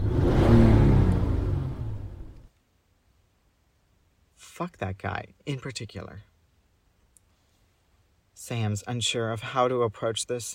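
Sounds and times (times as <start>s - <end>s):
loud car engine revving in the street: 0.0s - 2.4s
speech: 4.6s - 6.3s, 8.4s - 10.5s.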